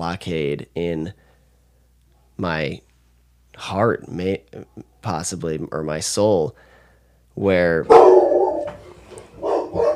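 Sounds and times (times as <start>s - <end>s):
speech: 0.0s - 1.2s, 2.4s - 2.9s, 3.6s - 6.7s, 7.4s - 8.8s, 9.7s - 9.9s
guard dog barking at delivery driver: 7.9s - 9.9s.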